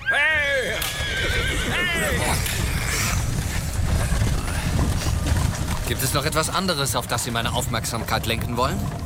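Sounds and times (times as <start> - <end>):
man shouting: 0.0 - 0.9
horse whinnying loudly: 0.0 - 3.7
horse hooves clip-clopping: 0.0 - 9.0
horse-drawn carriage wheels rumbling: 0.6 - 9.0
speech: 5.9 - 9.0.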